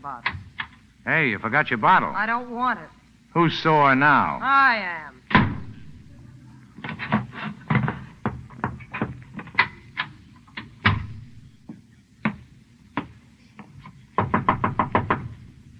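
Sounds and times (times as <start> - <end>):
speech: 0.0 - 0.4, 1.0 - 5.2
knocking on a door: 5.3 - 15.7.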